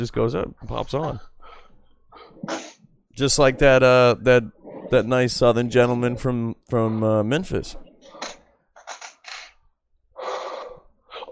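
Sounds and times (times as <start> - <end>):
speech: 0.0 - 1.3, 2.4 - 7.9
broken stuck chair creaking and groaning while shifted: 7.9 - 9.6.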